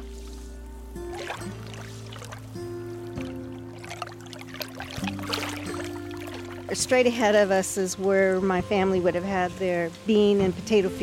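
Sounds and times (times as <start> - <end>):
gentle waves lapping against the shore of Tamales Bay: 0.0 - 11.0
speech: 6.7 - 11.0.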